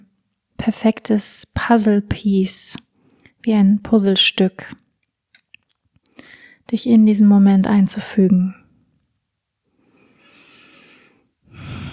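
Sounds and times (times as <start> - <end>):
speech: 0.7 - 4.8, 6.7 - 8.6
slow deep breathing in and out during a guided relaxation: 9.8 - 11.9.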